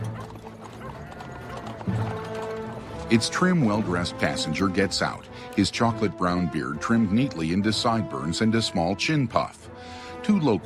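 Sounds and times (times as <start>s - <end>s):
horse snorting: 0.0s - 5.6s
rattling creaking wheels of a horse-drawn coupe in a village: 0.0s - 8.9s
horse hooves clip-clopping: 0.0s - 9.5s
speech: 3.1s - 10.6s.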